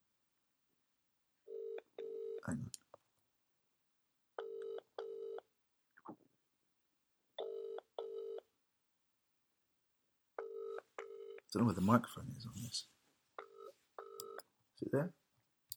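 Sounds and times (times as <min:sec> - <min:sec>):
telephone ringing tone through a handset: 0:01.5 - 0:02.4, 0:04.4 - 0:05.4, 0:07.4 - 0:08.4, 0:10.4 - 0:11.5, 0:13.4 - 0:14.4
speech: 0:02.4 - 0:02.8, 0:11.6 - 0:13.0, 0:14.9 - 0:15.2.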